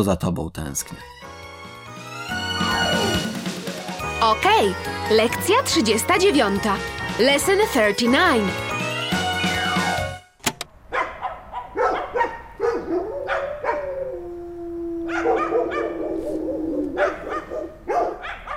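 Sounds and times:
speech: 0:00.0 - 0:01.3, 0:04.2 - 0:09.2
dogs yelping: 0:02.3 - 0:03.3, 0:10.9 - 0:18.5
drawn-out howl-like dog whine: 0:02.4 - 0:03.3, 0:12.8 - 0:17.7
several dogs barking: 0:10.9 - 0:14.2, 0:15.0 - 0:18.5.

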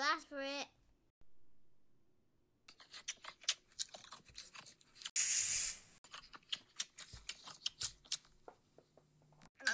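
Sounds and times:
crunching and chewing clicks: 0:02.7 - 0:05.1, 0:06.0 - 0:08.4
creature spraying liquid: 0:05.2 - 0:05.8.

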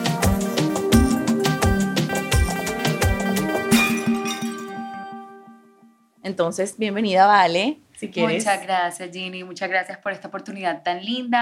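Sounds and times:
full musical backing: 0:00.0 - 0:06.4
magical shimmering chimes of genies coming out of a bottle: 0:03.7 - 0:05.0
speech: 0:06.3 - 0:11.3.

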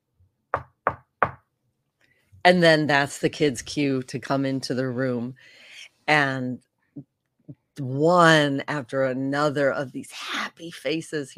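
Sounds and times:
sharp knocks on a hard surface: 0:00.6 - 0:01.4
speech: 0:02.4 - 0:11.3.

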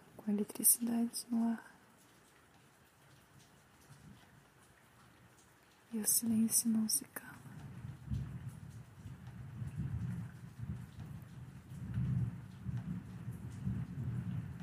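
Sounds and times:
steady rain pouring down outside: 0:00.0 - 0:14.6
speech: 0:00.3 - 0:01.7, 0:05.9 - 0:07.2
low rolling thunder: 0:07.5 - 0:14.6.

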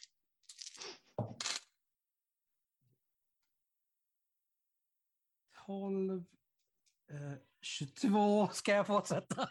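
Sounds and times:
eight six-sided dice rolled across a surface for a tabletop role-playing game: 0:00.0 - 0:01.7
speech: 0:05.7 - 0:06.4, 0:07.1 - 0:09.4.

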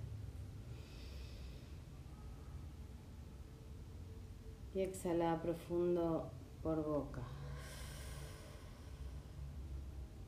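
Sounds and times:
deep inhale through the nose during a guided breathing exercise: 0:00.6 - 0:02.0, 0:07.3 - 0:09.5
speech: 0:04.7 - 0:07.4.

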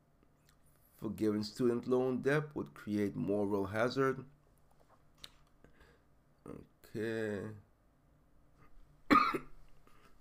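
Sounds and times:
speech: 0:01.0 - 0:04.4, 0:06.5 - 0:07.6
single sharp cough from a chronic cough: 0:09.1 - 0:09.6.

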